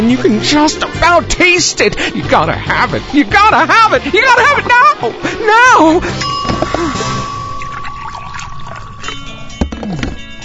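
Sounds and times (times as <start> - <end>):
speech: 0.0 - 6.8
Dunkin' Donuts coffee pouring into a cup: 7.6 - 9.2.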